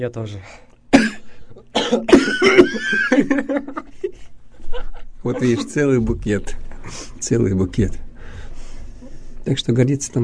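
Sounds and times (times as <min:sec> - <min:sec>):
speech: 0:00.0 - 0:00.7, 0:01.9 - 0:08.0, 0:09.5 - 0:10.2
harsh throaty coughing: 0:00.9 - 0:03.6
laughter: 0:02.0 - 0:06.0.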